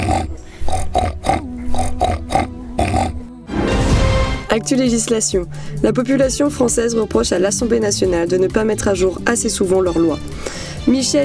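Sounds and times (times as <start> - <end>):
pig grunting and oinking: 0.0 - 3.3
speech: 4.6 - 11.2.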